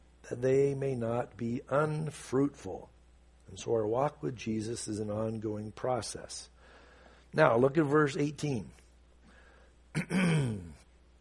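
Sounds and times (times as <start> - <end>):
speech: 0.3 - 2.9, 3.5 - 6.5, 7.3 - 8.8, 10.0 - 10.8
throat clearing: 9.9 - 10.9.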